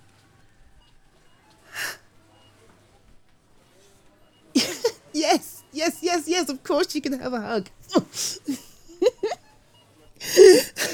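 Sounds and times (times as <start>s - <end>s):
person tearfully sniffling: 1.7s - 2.0s, 7.9s - 8.8s, 10.2s - 10.9s
laughter: 4.5s - 5.6s, 8.1s - 9.5s, 10.2s - 10.9s
speech: 5.3s - 8.3s.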